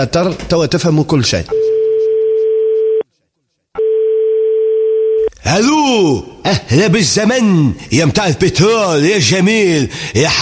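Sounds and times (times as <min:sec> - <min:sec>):
speech: 0:00.0 - 0:01.6, 0:05.4 - 0:10.4
telephone line tone as a phone call begins: 0:01.5 - 0:03.0, 0:03.8 - 0:05.3.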